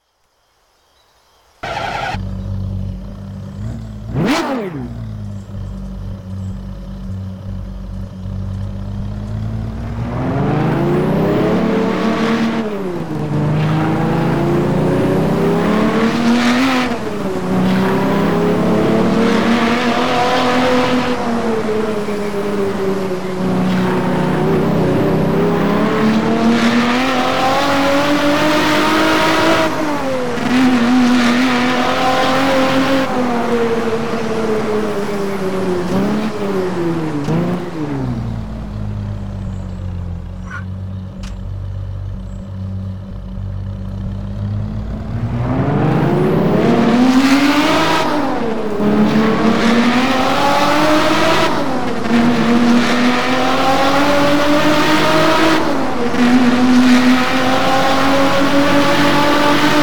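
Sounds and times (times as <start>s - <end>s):
Ferrari LaFerrari sports car engine: 1.6s - 59.8s.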